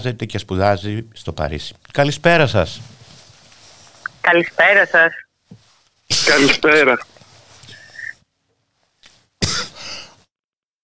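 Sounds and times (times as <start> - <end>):
speech: 0.0 - 3.0, 4.2 - 5.2, 6.1 - 7.1
person coughing: 6.1 - 6.6, 9.4 - 10.0
person clearing their throat: 9.4 - 9.8.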